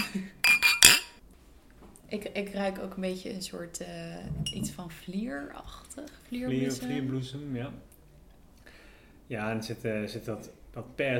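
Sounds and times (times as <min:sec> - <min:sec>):
wine glasses clinking in a toast: 0:00.0 - 0:01.2
speech: 0:02.1 - 0:07.9, 0:09.3 - 0:11.1.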